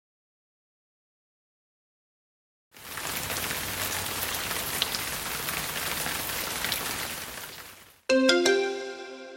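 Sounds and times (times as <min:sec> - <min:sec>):
rain falling on garden plants: 0:02.7 - 0:08.1
electronic chime of bright tones: 0:08.1 - 0:09.3.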